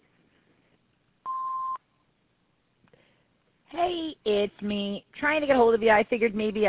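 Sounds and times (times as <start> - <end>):
answering machine electronic beep: 1.3 - 1.8
speech: 3.8 - 6.6.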